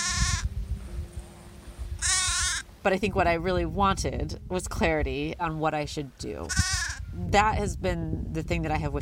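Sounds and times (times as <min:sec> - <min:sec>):
sheep bleating: 0:00.0 - 0:00.4, 0:02.0 - 0:02.6, 0:06.5 - 0:07.0
speech: 0:02.8 - 0:09.0.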